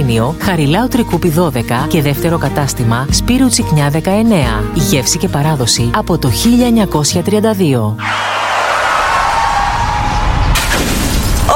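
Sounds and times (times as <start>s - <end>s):
speech: 0.0s - 8.9s
rumbling car crash: 8.9s - 11.5s
car windshield glass shattering: 10.5s - 11.5s.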